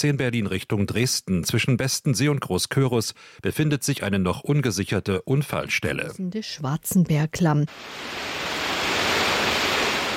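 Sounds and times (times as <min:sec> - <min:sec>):
speech: 0:00.0 - 0:08.6
wild mountain stream roaring through a gorge: 0:07.7 - 0:10.1.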